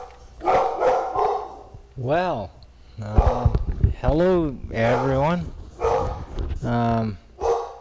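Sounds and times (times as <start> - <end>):
dog barking and yowling: 0.0 - 1.8, 3.1 - 3.6, 4.7 - 6.3, 7.4 - 7.7
speech: 2.0 - 5.6, 6.6 - 7.2.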